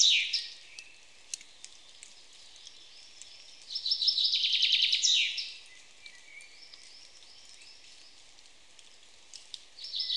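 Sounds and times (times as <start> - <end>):
common chaffinch Fringilla coelebs singing: 0.0 - 8.2, 9.8 - 10.1
faint ticks: 0.7 - 3.8, 6.4 - 9.7.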